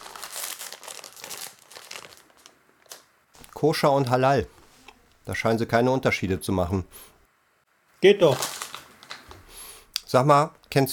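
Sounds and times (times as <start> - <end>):
bag of gummy bears crinkling and rustling: 0.0 - 3.6, 8.0 - 9.5
speech: 3.6 - 4.6, 5.3 - 7.1, 8.0 - 8.5, 10.1 - 10.9.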